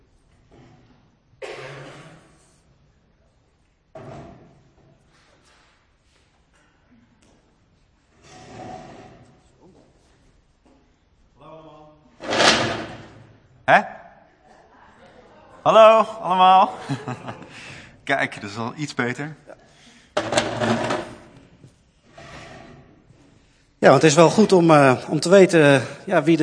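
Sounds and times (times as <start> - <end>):
chairs being picked up and set down: 12.2 - 13.3, 20.2 - 21.5
speech: 13.7 - 13.9, 15.6 - 19.6, 23.8 - 26.4
laughter: 14.5 - 18.0.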